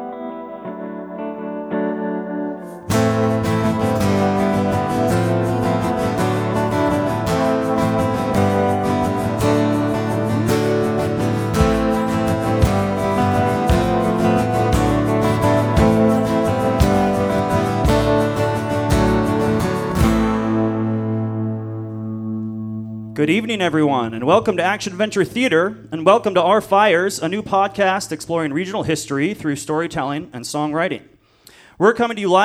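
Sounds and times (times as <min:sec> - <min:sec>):
dense effects-heavy original music with a steady rhythmic pulse: 0:00.0 - 0:23.2
speech: 0:23.2 - 0:31.1, 0:31.8 - 0:32.4.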